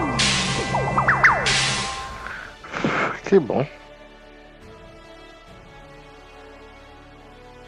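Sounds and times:
whip cracks: 0.2s - 2.2s
speech: 3.3s - 3.8s.

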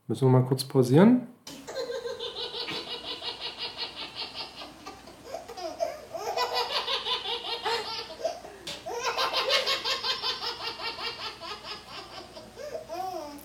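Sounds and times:
speech: 0.1s - 1.3s
baby laughing and babbling: 4.7s - 13.4s.

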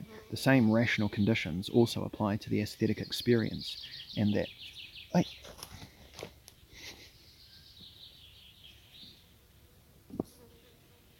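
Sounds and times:
speech: 0.3s - 6.3s
small pet bird chirping while trying to eat headphones: 2.8s - 5.9s, 6.5s - 9.4s.

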